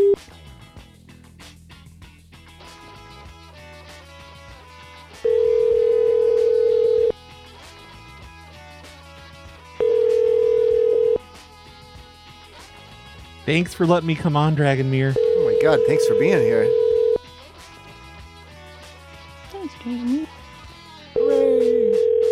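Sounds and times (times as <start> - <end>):
ringback tone of an unanswered phone call: 0.0 - 0.2, 5.2 - 7.2, 9.8 - 11.2, 15.1 - 17.2, 21.2 - 22.3
continuous music: 0.2 - 22.3
speech: 13.5 - 16.8.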